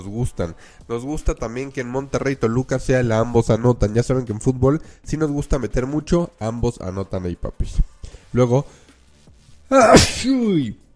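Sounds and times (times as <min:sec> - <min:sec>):
speech: 0:00.0 - 0:08.8, 0:09.7 - 0:10.8
ill man sneezing: 0:09.7 - 0:10.8.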